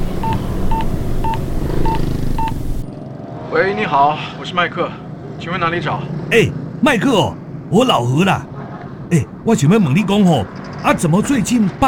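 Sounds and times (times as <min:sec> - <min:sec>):
telephone keypad tones as a man dials a phone number: 0:00.2 - 0:02.6
speech: 0:03.6 - 0:08.5, 0:09.1 - 0:11.8.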